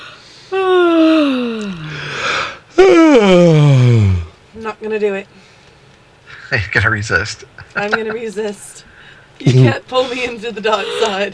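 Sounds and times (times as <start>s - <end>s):
drawn-out yawns with loud voiced exhale: 0.5s - 4.3s
speech: 4.8s - 5.4s, 6.5s - 11.3s.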